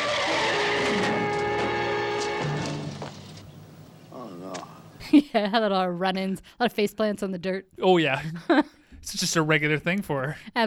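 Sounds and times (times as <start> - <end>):
car tires screeching: 0.0 - 3.4
car engine noise: 0.0 - 3.8
speech: 5.1 - 10.6.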